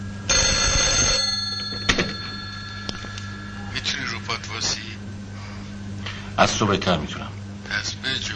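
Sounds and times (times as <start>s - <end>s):
bright metallic telephone bell ringing: 0.2s - 4.6s
speech: 6.4s - 8.1s.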